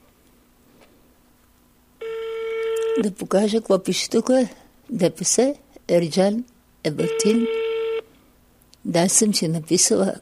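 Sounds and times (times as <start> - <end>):
phone ringing tone through a speakerphone: 2.0 - 3.1, 7.0 - 8.1
speech: 3.0 - 7.6, 8.8 - 10.1.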